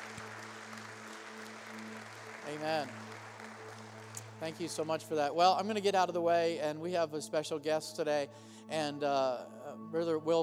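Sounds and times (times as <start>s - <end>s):
crowd applause: 0.0s - 5.2s
speech: 2.5s - 3.0s, 4.4s - 10.4s.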